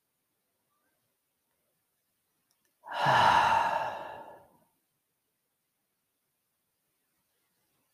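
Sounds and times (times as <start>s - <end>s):
slow deep breath: 2.8s - 4.6s.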